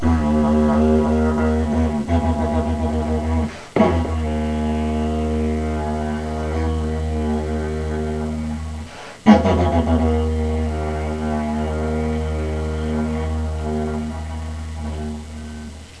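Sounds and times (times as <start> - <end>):
long bamboo didgeridoo: 0.0 - 15.9.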